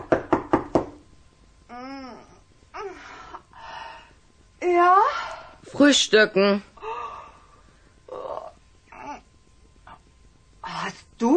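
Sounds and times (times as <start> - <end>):
knocking on a bedroom door: 0.0 - 1.0
speech: 5.8 - 6.7.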